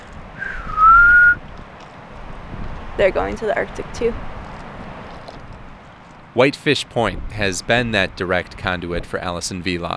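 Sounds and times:
wind noise: 0.0s - 9.9s
person whistling to imitate a black-bellied plover call: 0.4s - 1.4s
speech: 3.0s - 4.3s, 6.4s - 9.9s.

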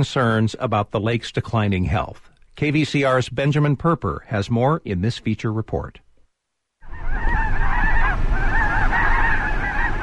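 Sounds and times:
speech: 0.0s - 6.0s
large flock of geese honking at a wetland refuge: 6.8s - 10.0s.

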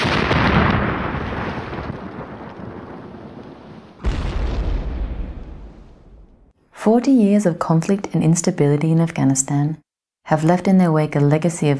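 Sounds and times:
heavy explosions: 0.0s - 6.6s
speech: 6.8s - 11.7s.

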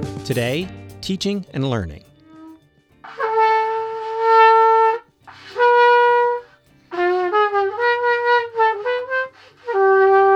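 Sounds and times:
speech: 0.3s - 2.1s
girl learning trumpet playing over a video call: 3.1s - 10.3s.

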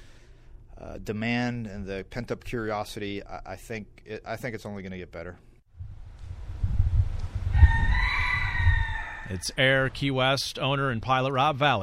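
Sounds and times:
speech: 1.0s - 5.5s, 9.3s - 11.8s
rooster crowing at Key West International Airport: 7.5s - 9.5s.

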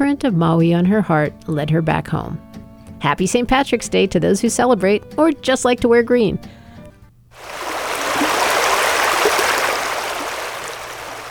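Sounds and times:
speech: 0.0s - 6.6s
stream water rushing: 7.4s - 11.2s.

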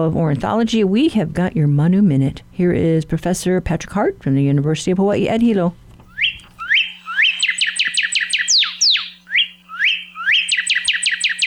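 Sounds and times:
speech: 0.0s - 5.8s
northern cardinal singing: 6.2s - 11.4s.

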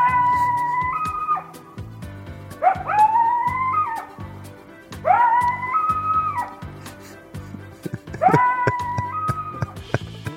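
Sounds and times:
coyotes howling and yipping: 0.0s - 1.8s, 2.6s - 6.7s, 8.2s - 9.8s
steady low rhythmic backing: 0.0s - 10.3s
laughter: 6.6s - 10.3s.

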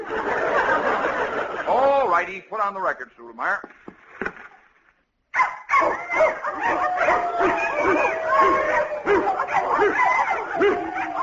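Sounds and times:
laughter: 0.0s - 2.1s, 6.6s - 11.2s
speech: 2.2s - 3.9s
several dogs barking, yipping and whining excitedly: 5.3s - 11.2s.

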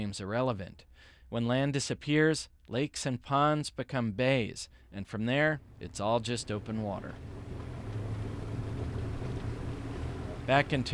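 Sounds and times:
speech: 0.0s - 7.4s, 10.5s - 10.9s
boat engine droning through rough water on a bay in Terrebonne Parish Louisiana: 5.6s - 10.9s
water wash from a boat moving through rough water: 5.6s - 10.9s.

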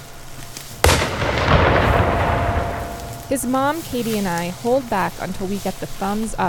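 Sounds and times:
hunting rifle shot: 0.8s - 4.5s
long rolling rumble trailing from the rifle shot: 0.8s - 5.1s
speech: 3.3s - 6.4s.

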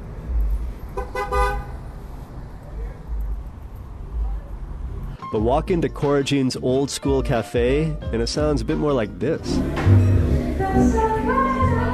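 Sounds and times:
urban street traffic of passing cars: 0.0s - 6.8s, 9.4s - 11.9s
car horn toot: 1.0s - 1.8s
speech: 5.3s - 11.0s.

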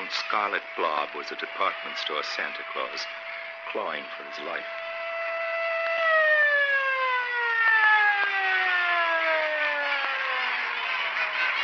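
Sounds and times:
siren wailing: 0.0s - 11.6s
speech: 0.3s - 4.8s.

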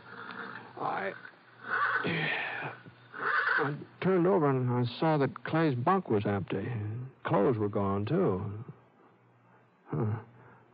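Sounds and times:
low steady hum: 0.0s - 10.7s
agitated horse in a corral neighing: 0.1s - 2.2s, 3.1s - 3.8s
speech: 0.8s - 2.9s, 3.6s - 8.7s, 9.9s - 10.7s.

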